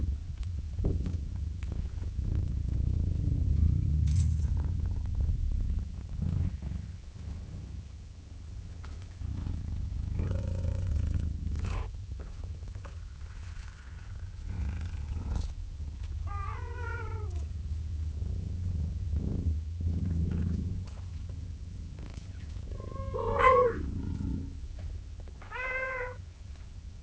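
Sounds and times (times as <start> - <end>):
cat purring in a low rumbling drone: 0.0 - 26.2
cat gently meowing: 25.4 - 26.2.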